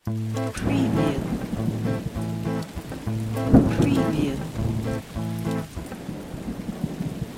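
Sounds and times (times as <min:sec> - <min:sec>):
electric guitar rhythm in A minor without effects: 0:00.0 - 0:06.4.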